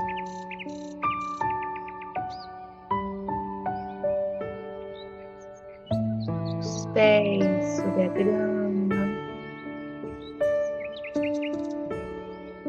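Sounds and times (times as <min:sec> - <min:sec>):
birds chirping and tweeting: 0:00.0 - 0:12.6
speech: 0:07.0 - 0:08.6.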